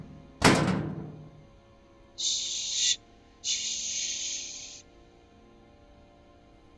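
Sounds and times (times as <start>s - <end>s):
dumpster lid slamming shut: 0.0s - 1.5s
person shushing: 2.2s - 4.8s.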